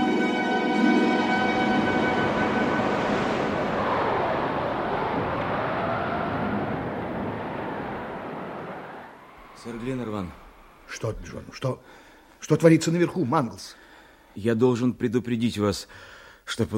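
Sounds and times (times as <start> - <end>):
surf at sea in a hurricane: 0.0 - 9.6
hurricane wind at sea: 1.2 - 10.8
speech: 9.6 - 13.8, 14.4 - 16.7.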